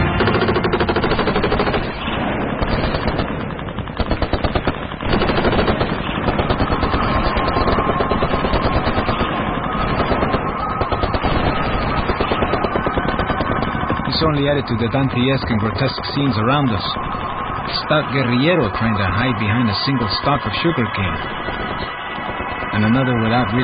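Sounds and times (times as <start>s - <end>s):
heavy machine-gun fire as enemy forces attack guerrillas: 0.0s - 14.1s
gunshots as enemy forces attack guerrillas near sugarcane: 0.0s - 23.6s
speech: 14.5s - 21.6s, 22.8s - 23.6s.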